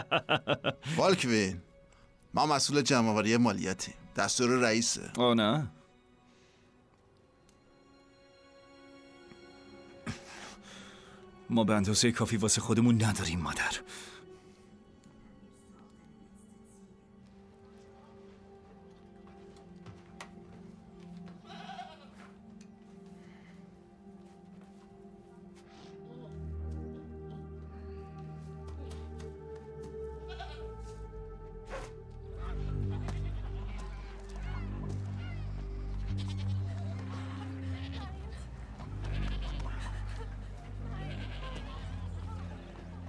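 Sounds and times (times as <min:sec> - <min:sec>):
laughter: 0:00.0 - 0:01.2, 0:36.6 - 0:43.0
speech: 0:00.0 - 0:01.7, 0:02.3 - 0:05.8, 0:11.5 - 0:14.1
sheep bleating: 0:21.4 - 0:22.4, 0:30.2 - 0:30.8, 0:32.4 - 0:42.7.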